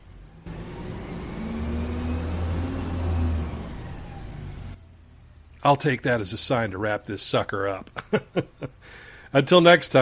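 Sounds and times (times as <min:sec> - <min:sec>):
low whining hum of garbage truck: 0:00.0 - 0:05.6
recycling garbage truck engine idling in an alley: 0:00.5 - 0:04.8
speech: 0:05.6 - 0:10.0.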